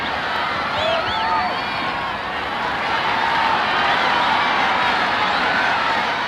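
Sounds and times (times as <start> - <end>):
full stadium crowd cheering and shouting for their country's athlete: 0.0 - 6.2
whistles from stadium crowd: 0.8 - 1.9.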